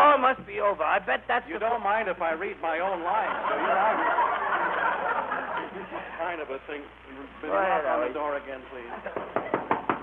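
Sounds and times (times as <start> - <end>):
speech: 0.4 - 4.3, 5.8 - 9.5
laughter: 3.0 - 6.5, 8.8 - 9.9
sharp knocks on a door: 9.2 - 10.0.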